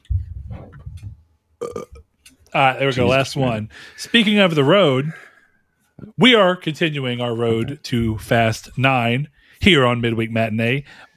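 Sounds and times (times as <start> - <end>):
long low rumbling burp: 1.6 - 2.0
speech: 2.6 - 5.3, 6.1 - 11.1.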